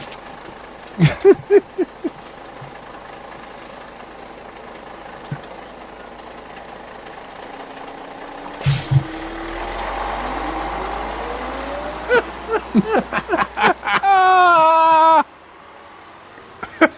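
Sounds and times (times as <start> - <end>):
bus engine idling with a low rumble: 0.0 - 16.9
laughter: 1.0 - 2.2, 12.1 - 15.2, 16.6 - 16.9
thuds: 5.2 - 5.5, 8.6 - 9.3
loud clunks: 8.6 - 9.3.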